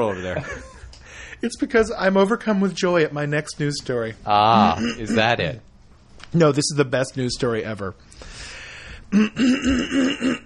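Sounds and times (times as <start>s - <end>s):
speech: 0.0s - 0.8s, 1.4s - 5.7s, 6.3s - 8.5s, 9.1s - 10.4s
laughter: 0.0s - 1.0s
throat clearing: 4.6s - 5.3s, 9.1s - 10.4s.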